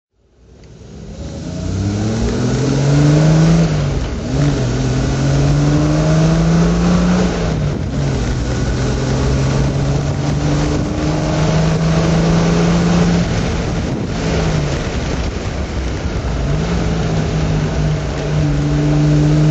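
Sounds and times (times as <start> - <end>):
Triumph TR6 SU car engine driving: 0.2 - 19.4.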